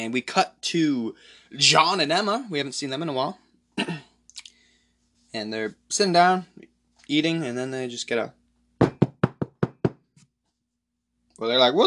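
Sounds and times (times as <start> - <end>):
speech: 0.0 - 4.1, 5.3 - 8.4, 11.4 - 11.8
firm knocking on a door at night: 8.8 - 10.1.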